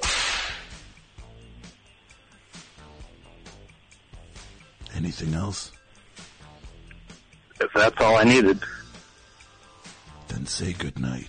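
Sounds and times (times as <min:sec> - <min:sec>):
leather whip cracking: 0:00.0 - 0:00.7
speech: 0:05.0 - 0:05.8, 0:07.8 - 0:08.8, 0:10.5 - 0:11.2.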